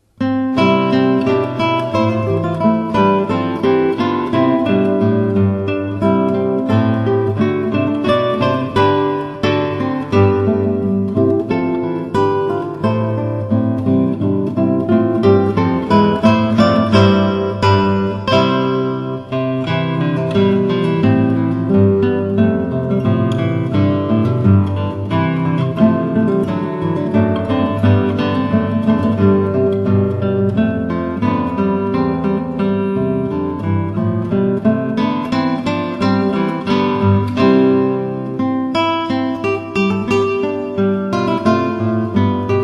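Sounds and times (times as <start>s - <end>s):
three guitars: 0.0s - 42.6s.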